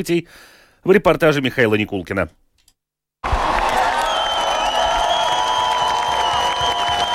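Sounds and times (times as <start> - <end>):
speech: 0.0 - 2.4
large crowd of fans cheering: 3.2 - 7.1
crowd whistles: 3.6 - 7.1.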